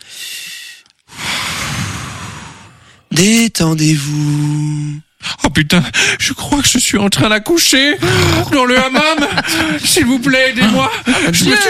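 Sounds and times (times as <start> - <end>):
deep relaxation breathing: 0.0 - 3.1, 8.0 - 8.5, 10.8 - 11.4
speech: 3.2 - 11.6
laughter: 8.0 - 11.6.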